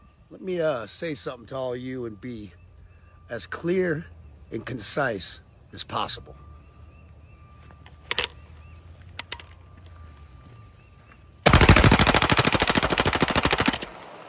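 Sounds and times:
speech: 0:00.3 - 0:02.6, 0:03.3 - 0:06.4
gunfire shooting at beer cans: 0:11.5 - 0:14.2
rapid automatic gunfire at beer cans: 0:11.5 - 0:14.2.

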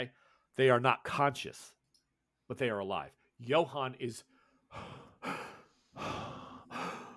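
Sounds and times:
speech: 0:00.0 - 0:01.8, 0:02.5 - 0:07.0
person imitating slow deep breathing of an unconscious injured man: 0:04.7 - 0:07.1.

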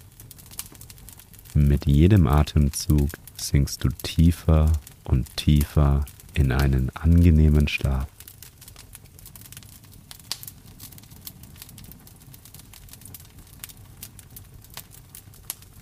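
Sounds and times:
fire crackling in a fireplace: 0:00.0 - 0:15.8
sharp pops and snaps of a fireplace fire: 0:00.5 - 0:08.3
speech: 0:01.6 - 0:08.1
steady low rumble of a fireplace fire: 0:01.6 - 0:08.1.

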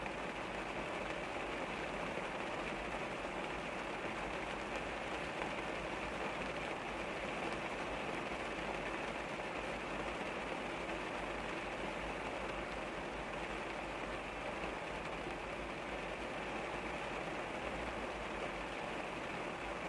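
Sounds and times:
rain falling on a car in an outdoor parking lot: 0:00.0 - 0:19.8.

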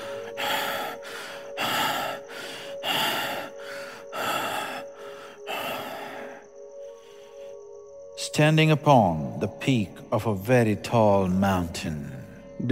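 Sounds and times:
rapid rasping gasping breaths: 0:00.0 - 0:07.6
speech: 0:08.4 - 0:12.7.

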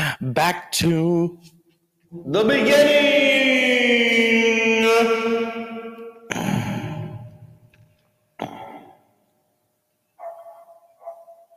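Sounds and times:
speech: 0:00.1 - 0:05.6
dog barking: 0:10.2 - 0:11.5.

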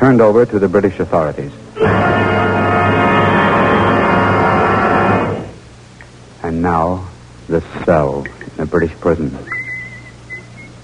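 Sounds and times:
speech: 0:00.0 - 0:02.5, 0:06.5 - 0:09.5
low steady hum: 0:00.0 - 0:10.8
prison guard whistling a slow wavering tune in a British prison: 0:09.4 - 0:10.8.

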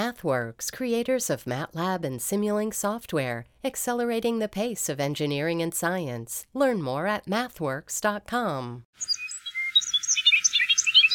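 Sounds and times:
speech: 0:00.0 - 0:09.2
bobolinks singing in grassy farm fields: 0:09.0 - 0:11.1.

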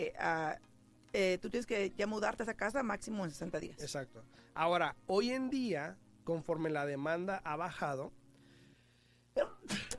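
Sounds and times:
speech: 0:00.0 - 0:08.2, 0:09.4 - 0:09.8
person sneezing: 0:09.4 - 0:09.9.

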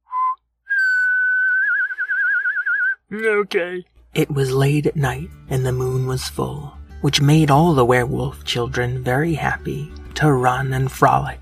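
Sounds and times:
person whistling imitating a horse's whinny: 0:00.0 - 0:03.1
speech: 0:03.1 - 0:11.4.

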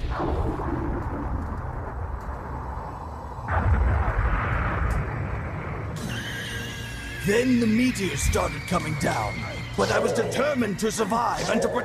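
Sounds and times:
thunder rumbling in a violent electrical storm: 0:00.0 - 0:06.0
speech: 0:07.3 - 0:11.8.

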